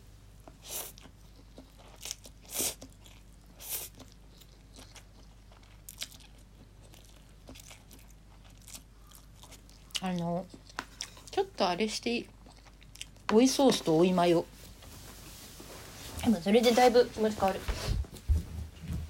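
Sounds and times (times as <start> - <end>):
low steady hum: 0.0 - 19.0
crunchy biting and chewing of food: 0.4 - 11.4, 12.2 - 13.3
speech: 10.1 - 10.6, 11.4 - 12.4, 13.3 - 14.6, 16.3 - 17.8.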